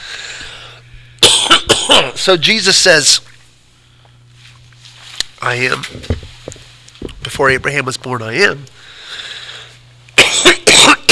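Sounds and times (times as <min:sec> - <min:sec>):
person coughing: 0:01.2 - 0:02.3, 0:10.2 - 0:11.1
speech: 0:02.2 - 0:03.3, 0:05.4 - 0:06.2, 0:07.3 - 0:08.8.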